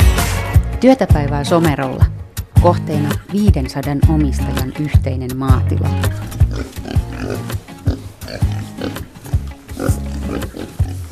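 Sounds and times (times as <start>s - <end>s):
speech: 0.8s - 7.6s
pigs grunting and snorting on a jointly owned farm in Somero Finland: 6.0s - 11.1s.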